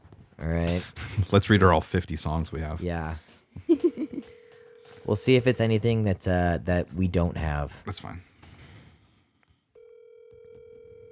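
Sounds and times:
speech: 0:00.4 - 0:03.9, 0:05.1 - 0:08.3
electronic ringing tone of an outgoing phone call: 0:04.1 - 0:05.2, 0:09.8 - 0:11.1.

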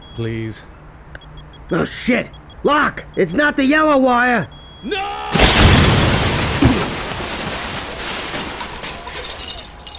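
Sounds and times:
speech: 0:00.2 - 0:00.8, 0:01.7 - 0:05.4
loud bomb explosion with a deep boom and sharp crack: 0:05.3 - 0:07.7
glass panes shattering: 0:05.3 - 0:09.9
debris clattering down: 0:05.4 - 0:09.9.

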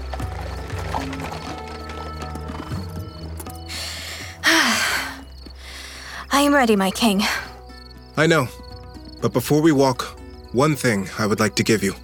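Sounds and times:
hooves of a horse-drawn chariot clopping: 0:00.0 - 0:05.6
speech: 0:06.4 - 0:07.4, 0:08.2 - 0:08.6, 0:09.2 - 0:12.0.

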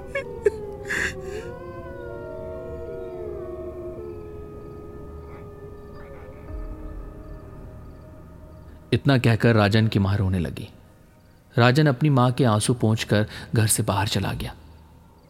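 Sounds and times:
several wolves howling together: 0:00.0 - 0:08.6
speech: 0:08.9 - 0:10.8, 0:11.6 - 0:14.6.

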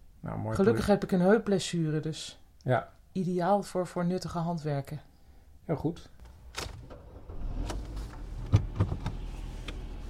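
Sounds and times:
speech: 0:00.2 - 0:05.1, 0:05.7 - 0:06.2
low car engine heard from inside a car pulling away: 0:06.3 - 0:10.0
road rumble heard from inside a car: 0:06.4 - 0:10.0.

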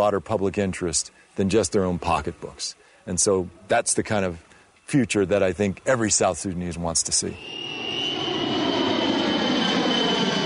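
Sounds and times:
speech: 0:00.0 - 0:08.1
airplane engine roar with faint high whine, delivering food sacks: 0:07.2 - 0:10.4.

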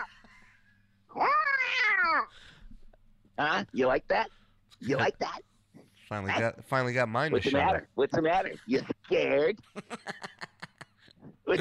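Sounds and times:
cat yowling as its tail is squeezed: 0:01.1 - 0:02.3
speech: 0:03.4 - 0:05.5, 0:06.1 - 0:10.4
laughter: 0:09.6 - 0:11.6.

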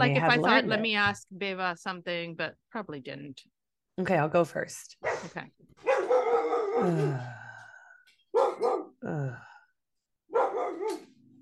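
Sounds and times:
speech: 0:00.0 - 0:07.4, 0:08.3 - 0:09.5
dogs barking: 0:05.0 - 0:06.8, 0:08.3 - 0:09.0, 0:10.3 - 0:11.1.

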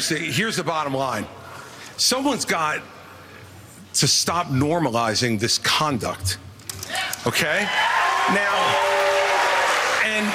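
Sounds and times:
speech: 0:00.0 - 0:03.0, 0:04.0 - 0:09.0, 0:10.1 - 0:10.3
loud crowd cheering and booing: 0:07.0 - 0:10.3.

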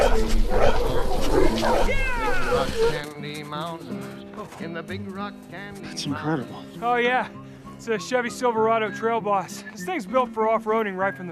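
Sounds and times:
cat meowing: 0:00.9 - 0:03.0
speech: 0:03.5 - 0:11.3.

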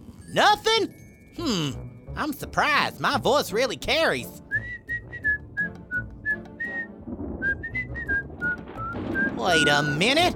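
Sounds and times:
speech: 0:00.3 - 0:04.4, 0:09.4 - 0:10.3
distant person whistling a tune: 0:04.5 - 0:09.4.

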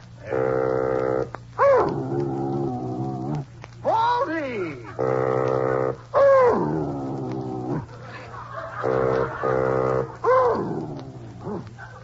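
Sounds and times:
low constant hum: 0:00.0 - 0:12.0
sustained bassoon notes played by a person: 0:00.2 - 0:01.3, 0:05.0 - 0:06.1, 0:08.8 - 0:10.2
dog howling and yowling: 0:00.2 - 0:03.5, 0:04.9 - 0:08.0, 0:08.8 - 0:12.0
laughter: 0:07.9 - 0:10.3, 0:11.8 - 0:12.0.

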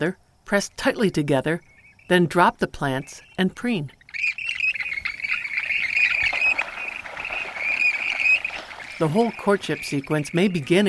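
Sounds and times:
speech: 0:00.0 - 0:04.0, 0:09.0 - 0:10.8
Western Grebe pair courtship calls of harsh grating notes: 0:02.9 - 0:10.8.

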